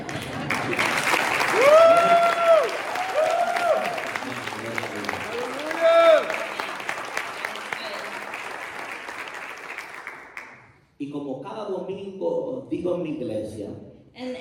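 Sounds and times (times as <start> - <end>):
audience applause in a large room: 0.0 - 10.6
audience cheers and whoops: 1.4 - 4.3, 5.2 - 8.0.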